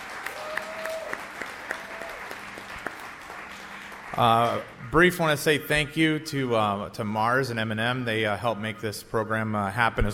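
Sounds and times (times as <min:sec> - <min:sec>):
theater audience applause: 0:00.0 - 0:05.3
speech: 0:04.2 - 0:10.1.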